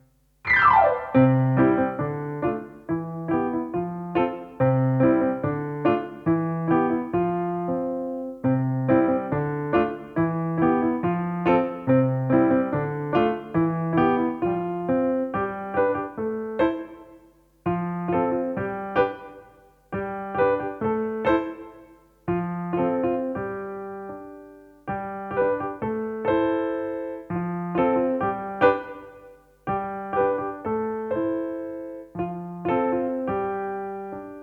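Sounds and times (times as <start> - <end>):
hopping piano: 0.5 - 34.4.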